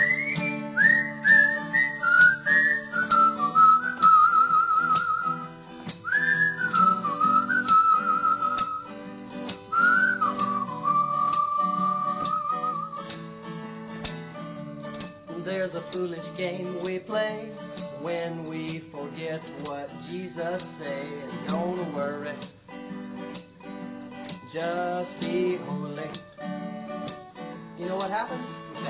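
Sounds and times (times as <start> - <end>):
person whistling a bright bouncy tune: 0.0 - 9.0, 9.6 - 13.2
steady plucked backing music: 0.0 - 28.8.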